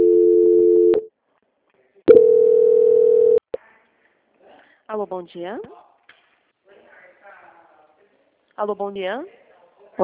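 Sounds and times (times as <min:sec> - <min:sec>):
telephone line tones during a call transfer: 0:00.0 - 0:01.1, 0:02.1 - 0:03.4
speech: 0:04.9 - 0:05.8, 0:08.6 - 0:09.4.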